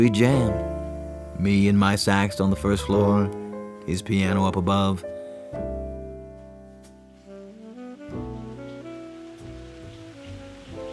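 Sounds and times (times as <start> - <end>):
speech: 0.0 - 0.7, 1.4 - 5.7
steady rain falling: 0.0 - 3.9, 7.0 - 10.9
sustained low musical tones humming: 0.0 - 10.9.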